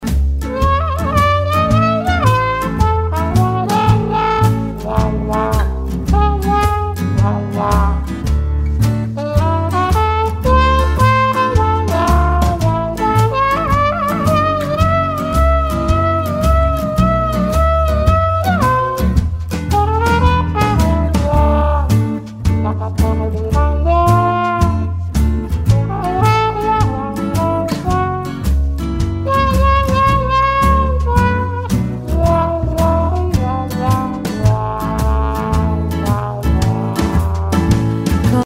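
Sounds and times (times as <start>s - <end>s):
trumpet solo: 0.4s - 8.4s, 9.2s - 38.4s.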